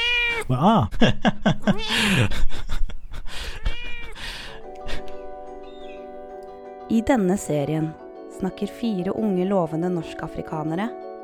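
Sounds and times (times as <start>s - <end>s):
cat meowing: 0.0s - 0.5s, 1.6s - 4.7s
speech: 0.4s - 2.8s, 6.9s - 11.0s
laughter: 0.8s - 3.6s.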